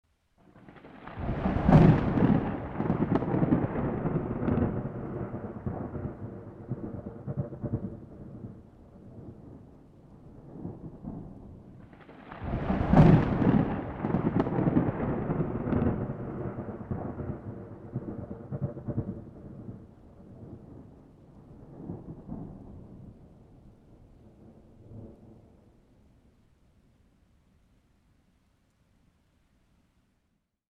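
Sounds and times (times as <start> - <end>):
thunder: 0.4 - 23.3.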